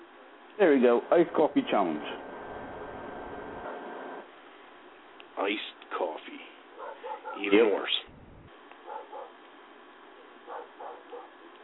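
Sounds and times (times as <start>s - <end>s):
low hum: 0.0s - 11.6s
speech: 0.6s - 2.2s, 5.4s - 6.3s, 7.4s - 8.1s
dog barking: 6.7s - 7.8s, 8.8s - 9.5s, 10.1s - 11.5s.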